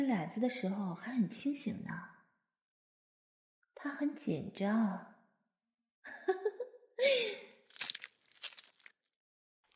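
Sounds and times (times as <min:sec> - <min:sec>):
speech: 0:00.0 - 0:02.2, 0:03.8 - 0:05.1
crisp crunchy chewing: 0:07.6 - 0:09.0.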